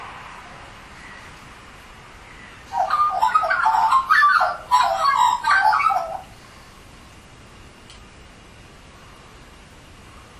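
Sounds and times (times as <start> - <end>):
Australian magpie singing liquid warbled whistled notes: 2.6 - 6.4.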